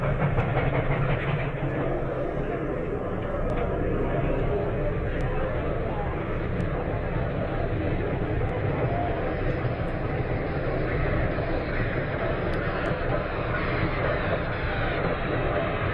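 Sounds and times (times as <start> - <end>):
train carriages rattling: 0.0 - 8.4
train rumbling into a station: 0.0 - 15.9.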